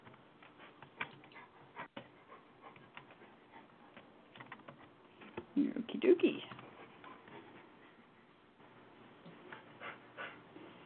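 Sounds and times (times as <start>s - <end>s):
dog panting: 0.4s - 4.9s, 6.5s - 8.6s, 9.3s - 10.8s
speech: 5.6s - 6.6s.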